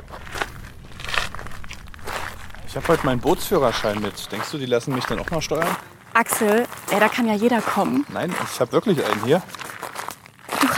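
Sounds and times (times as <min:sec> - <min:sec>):
crunchy footsteps of people walking to a meeting point: 0:00.0 - 0:10.7
speech: 0:02.8 - 0:09.6.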